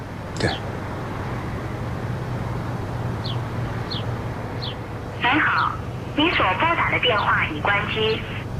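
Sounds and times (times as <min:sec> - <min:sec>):
steady low hum: 0:00.0 - 0:08.5
tinny automated voice playing a switched-off message: 0:00.4 - 0:00.6, 0:05.2 - 0:08.4
speech: 0:06.4 - 0:08.4.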